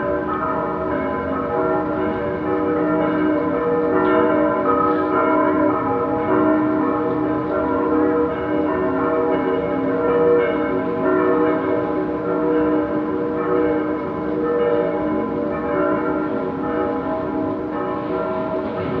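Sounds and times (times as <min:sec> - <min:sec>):
distant bells in Berlin: 0:00.0 - 0:18.9.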